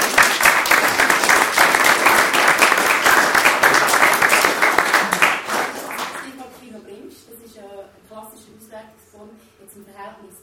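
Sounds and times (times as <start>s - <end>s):
audience applause in a hall: 0.0s - 6.6s.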